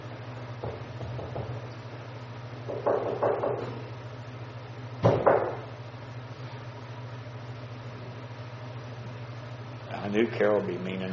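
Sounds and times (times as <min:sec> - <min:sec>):
heavy thuds pounding on a door: 0:00.6 - 0:01.6, 0:02.7 - 0:03.7, 0:05.0 - 0:05.7
speech: 0:10.2 - 0:11.1.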